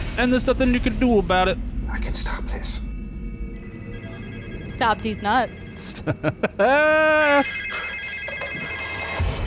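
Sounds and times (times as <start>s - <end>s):
speech: 0.2s - 2.9s, 4.8s - 7.6s
telephone ringing with a loud steady electronic tone: 3.6s - 6.6s, 7.4s - 9.3s
laughter: 5.8s - 8.0s.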